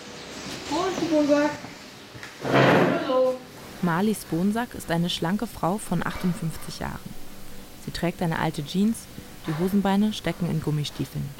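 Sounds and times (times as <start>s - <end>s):
speech: 1.1s - 1.7s, 2.4s - 7.2s, 7.9s - 11.3s
office door in a cow barn scraping as it swings wider: 2.4s - 3.1s.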